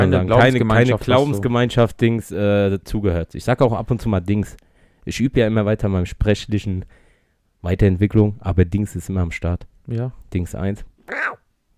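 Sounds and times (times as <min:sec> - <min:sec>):
speech: 0:00.0 - 0:07.0, 0:07.6 - 0:11.4
person mimicking a cat with a nasal meow: 0:11.1 - 0:11.4.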